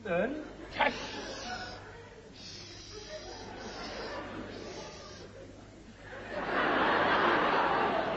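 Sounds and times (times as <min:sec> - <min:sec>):
laughter: 0:00.5 - 0:01.8, 0:02.8 - 0:08.1
faint snicker-like voice sounds: 0:00.6 - 0:08.1
person imitating a hissing snake: 0:00.8 - 0:05.4.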